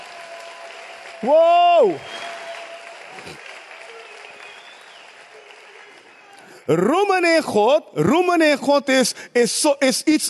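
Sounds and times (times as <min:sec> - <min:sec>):
audience clapping: 0:00.0 - 0:07.2
speech: 0:01.2 - 0:02.2, 0:06.7 - 0:10.2.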